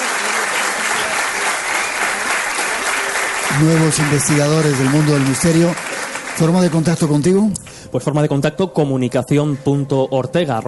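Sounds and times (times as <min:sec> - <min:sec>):
audience applause: 0:00.0 - 0:07.4
speech: 0:03.6 - 0:10.6.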